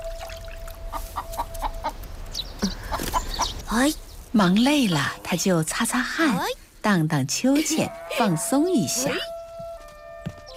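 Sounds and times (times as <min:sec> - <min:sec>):
chickens clucking as they are fed in a courtyard: 0:00.8 - 0:03.7
speech: 0:03.7 - 0:09.3.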